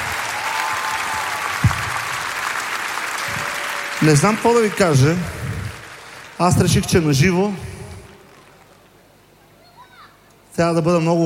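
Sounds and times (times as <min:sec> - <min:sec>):
audience applause: 0:00.0 - 0:09.0
low thump: 0:01.6 - 0:01.9
speech: 0:04.0 - 0:05.4, 0:06.4 - 0:07.7, 0:10.6 - 0:11.2.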